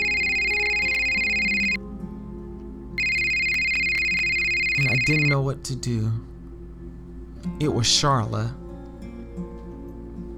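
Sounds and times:
phone ringing with a bright electronic tone: 0.0 - 1.8, 3.0 - 5.4
speech: 5.0 - 6.3, 7.5 - 8.6.

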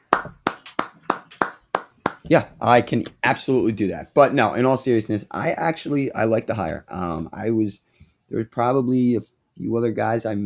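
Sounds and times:
hands clapping: 0.0 - 2.4
speech: 2.3 - 10.4.

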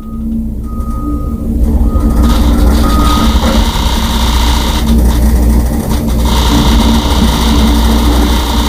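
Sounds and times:
high beep: 0.0 - 4.9
construction machinery rumble in front of a house: 0.0 - 8.6.

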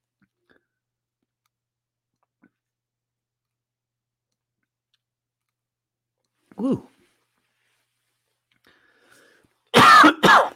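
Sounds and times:
speech: 6.6 - 6.9
person coughing into microphone: 9.7 - 10.5.

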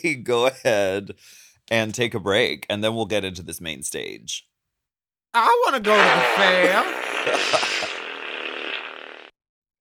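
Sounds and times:
speech: 0.0 - 4.5, 5.3 - 7.7
long buzzy fart sound: 5.8 - 9.4.

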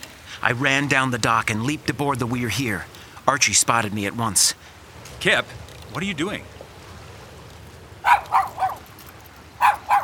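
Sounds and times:
hiss: 0.0 - 10.0
speech: 0.4 - 6.6
dog barking: 8.0 - 9.0, 9.6 - 10.0.

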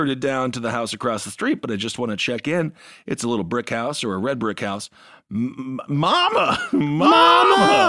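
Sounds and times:
speech: 0.0 - 7.8
loud voice imitating heavy breathing and moaning: 5.3 - 7.8.

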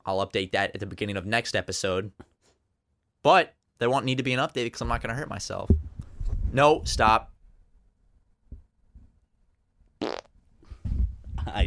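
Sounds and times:
speech: 0.0 - 2.3, 3.2 - 5.8, 6.5 - 7.3, 11.4 - 11.6
fart: 10.0 - 10.3
low rumbling fart with a blubbery finish: 10.0 - 11.6.

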